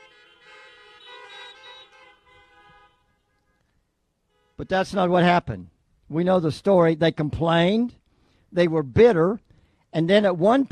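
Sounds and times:
several car horns honking: 0.0 - 5.1
speech: 4.6 - 10.7.

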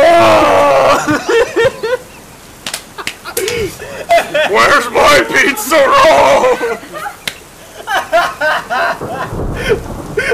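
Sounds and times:
woman screaming: 0.0 - 1.1, 5.3 - 7.2
choppy bursts of laughter: 0.7 - 4.7, 6.1 - 10.3.

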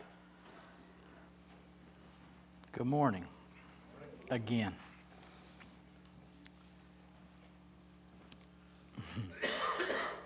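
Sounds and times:
speech: 2.8 - 3.4, 4.3 - 4.9
person coughing: 9.0 - 10.2.

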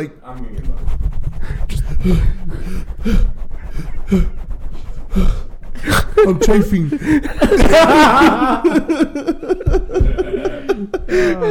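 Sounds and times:
speech: 0.0 - 4.4, 5.2 - 5.4, 6.2 - 10.5
person imitating heavy labored breathing: 1.4 - 7.7, 10.2 - 11.5
laughter: 5.8 - 11.5.

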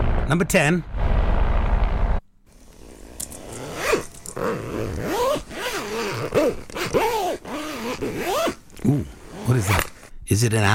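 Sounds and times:
low rumbling noise: 0.0 - 2.2
speech: 0.3 - 0.9, 8.0 - 10.7
zipper pulled back and forth on a jacket or bag: 2.5 - 10.1.

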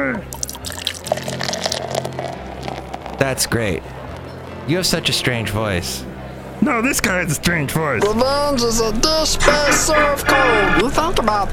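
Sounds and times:
speech: 0.0 - 0.4, 3.2 - 4.0, 4.7 - 11.5
root beer dripping: 0.3 - 3.3
root beer being poured into a glass: 0.3 - 4.3
laughter: 9.1 - 11.4.

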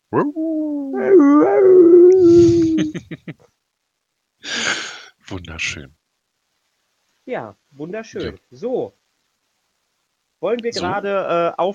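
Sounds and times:
speech: 0.1 - 1.3, 2.8 - 3.4, 5.5 - 6.0, 7.3 - 9.0, 10.4 - 11.7
wolves howling in a wolf enclosure: 0.1 - 2.9.

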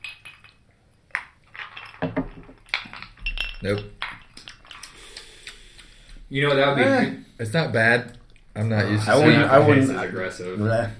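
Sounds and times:
glasses of peach drink clinking together in a toast: 0.0 - 4.9
speech: 3.6 - 4.0, 6.3 - 10.9.

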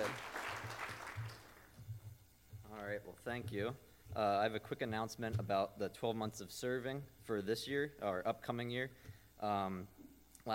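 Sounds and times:
audience applauding: 0.0 - 1.8
speech: 3.0 - 10.5.

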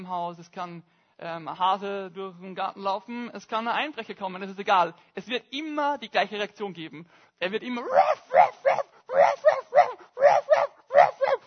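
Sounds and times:
speech: 0.0 - 11.4
person imitating the yappy barking of a small dog: 7.8 - 11.4.

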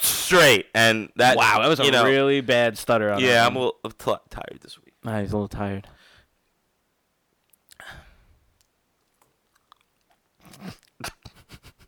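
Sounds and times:
slurpy sucking sounds: 0.0 - 0.4
speech: 0.3 - 6.0, 10.6 - 11.2
lip smacks: 8.6 - 11.4.

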